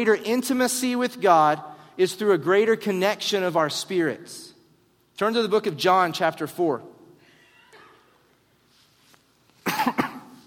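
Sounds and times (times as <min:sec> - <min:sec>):
speech: 0:00.0 - 0:04.5, 0:05.2 - 0:06.9
person coughing harshly: 0:09.6 - 0:10.4.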